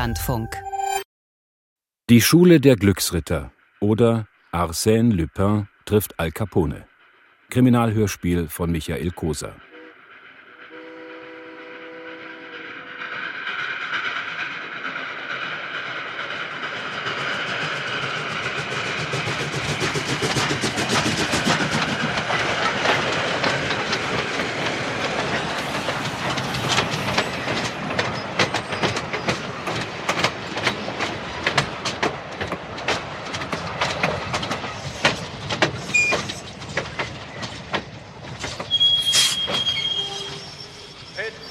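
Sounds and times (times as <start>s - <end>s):
speech: 0.0s - 0.7s, 2.1s - 6.9s, 7.5s - 9.7s
passenger train rolling in: 2.1s - 41.4s
clickety-clack of train wheels over rail joints: 12.9s - 40.7s.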